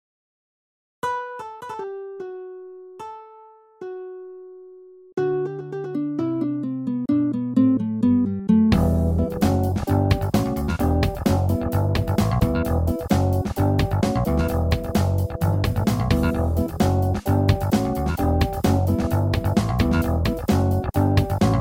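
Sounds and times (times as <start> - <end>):
Rhodes electric piano: 5.7 - 21.5
picked bass: 6.3 - 21.5.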